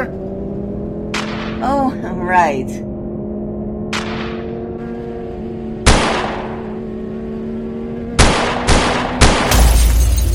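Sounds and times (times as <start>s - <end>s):
steady low hum: 0.0s - 10.3s
speech: 1.6s - 2.9s
gunfire: 3.9s - 4.5s, 5.8s - 6.6s, 8.2s - 9.8s.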